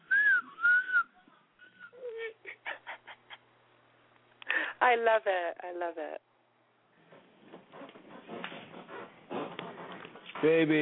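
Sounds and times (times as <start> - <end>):
person whistling gliding notes: 0.0 - 1.1
speech: 4.8 - 6.3, 10.4 - 10.8.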